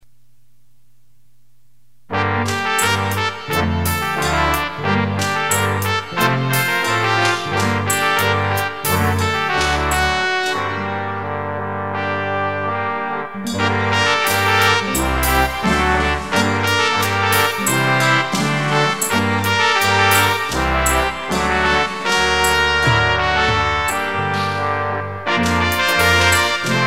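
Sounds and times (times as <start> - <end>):
mini trumpet: 2.1 - 26.8.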